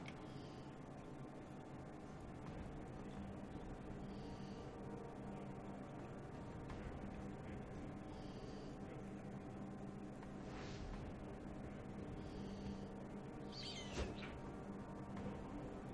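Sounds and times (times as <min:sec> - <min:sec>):
steady hiss: 0:00.0 - 0:15.9
video game eagle screeches: 0:13.5 - 0:14.3.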